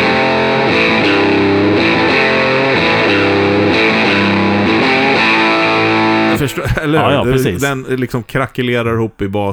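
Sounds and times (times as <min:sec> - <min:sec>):
guitar chords through a small guitar amp at full gain: 0:00.0 - 0:07.6
laughter: 0:05.9 - 0:08.6
speech: 0:06.5 - 0:09.5.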